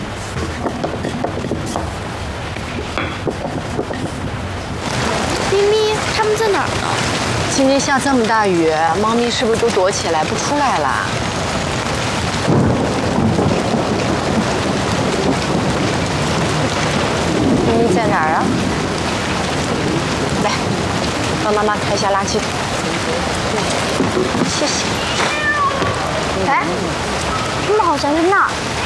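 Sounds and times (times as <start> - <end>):
heavy rain: 0.0 - 28.8
people speaking: 5.0 - 11.2, 17.6 - 18.6, 19.9 - 20.8, 21.4 - 25.0, 25.7 - 27.0, 27.6 - 28.6
cat meowing: 24.8 - 26.3.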